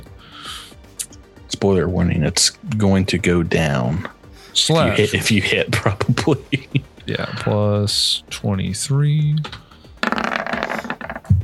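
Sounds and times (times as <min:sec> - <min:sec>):
speech: 0:01.5 - 0:06.4, 0:07.1 - 0:09.5
dice rolled for an attack in a tabletop game: 0:09.4 - 0:11.3.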